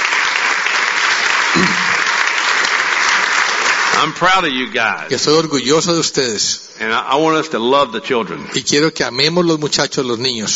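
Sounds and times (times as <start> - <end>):
audience applauding a group of children: 0.0 - 5.5
speech: 4.0 - 10.5.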